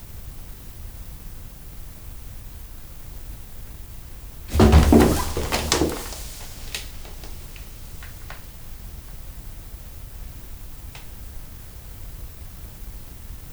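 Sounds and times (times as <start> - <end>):
tiger python striking and coiling around a rabbit in a zoo: 4.5 - 7.5.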